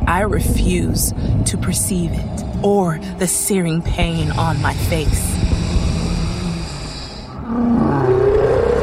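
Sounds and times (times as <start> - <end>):
speech: 0.1 - 5.4
deep growling monster roar: 4.3 - 8.8.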